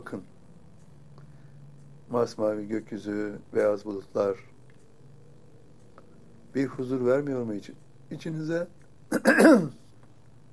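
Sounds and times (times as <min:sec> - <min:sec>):
speech: 0:00.0 - 0:00.4, 0:02.1 - 0:04.5, 0:06.5 - 0:09.8
coughing and throat clearing: 0:09.1 - 0:09.8.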